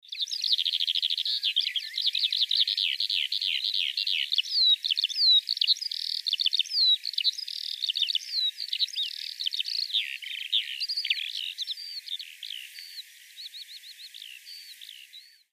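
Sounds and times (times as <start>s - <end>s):
lark singing: 0.0s - 15.5s.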